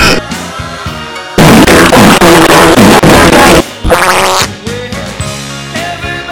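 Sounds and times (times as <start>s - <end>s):
long loud raspy fart: 1.4s - 4.5s.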